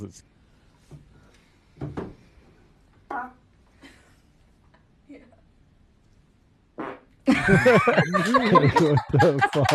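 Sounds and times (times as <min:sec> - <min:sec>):
speech: 0:00.0 - 0:00.3, 0:07.4 - 0:09.7
farts: 0:06.8 - 0:07.2
laughter: 0:07.3 - 0:09.7.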